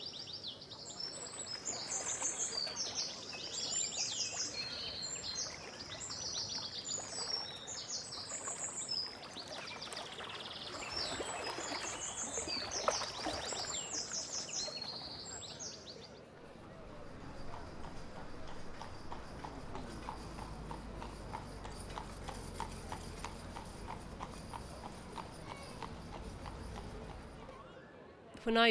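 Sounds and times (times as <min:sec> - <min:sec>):
many birds chirping and twittering: 0:00.0 - 0:27.6
river water flowing: 0:00.8 - 0:27.4
low rumble of wagon wheels: 0:16.5 - 0:27.6
horse hooves clip-clopping on a hard road pulling a wagon in Killarney: 0:17.2 - 0:27.4.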